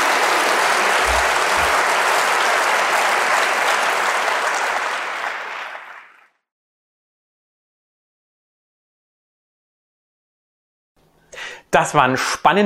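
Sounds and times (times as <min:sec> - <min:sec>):
audience applauding a speaker: 0:00.0 - 0:06.4
speech: 0:11.8 - 0:12.6.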